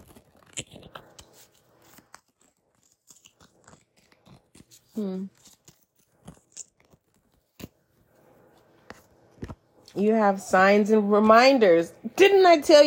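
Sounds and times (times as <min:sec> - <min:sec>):
deck of oracle cards being shuffled: 0:00.0 - 0:09.9
speech: 0:05.0 - 0:05.4, 0:10.0 - 0:12.8.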